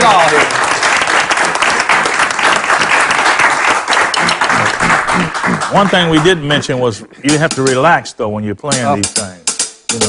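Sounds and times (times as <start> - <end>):
audience applauding: 0.0 - 6.8
speech: 5.7 - 10.0.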